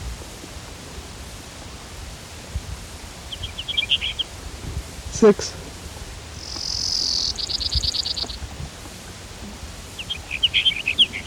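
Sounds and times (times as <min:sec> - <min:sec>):
faint low noise: 0:00.0 - 0:11.2
Brewer's sparrow song: 0:03.1 - 0:04.4, 0:06.2 - 0:11.2
speech: 0:05.2 - 0:05.6.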